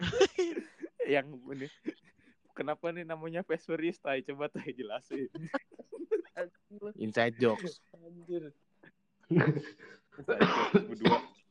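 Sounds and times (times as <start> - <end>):
person coughing: 0.0 - 0.8, 9.3 - 11.4
speech: 1.1 - 2.0, 2.6 - 5.6, 6.4 - 8.6, 9.3 - 11.3
laughter: 4.6 - 6.4.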